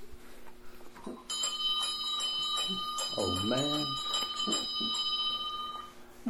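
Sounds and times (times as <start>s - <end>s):
bell ringing with a bright sustained metallic tone: 1.3s - 6.0s
speech: 2.7s - 5.0s.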